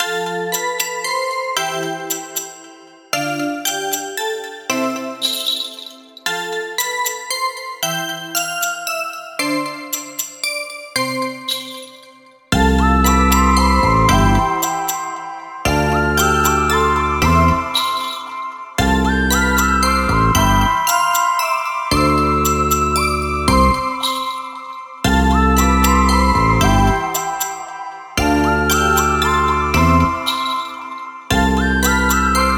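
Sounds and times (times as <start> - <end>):
relaxing night background music: 0.0 - 32.5.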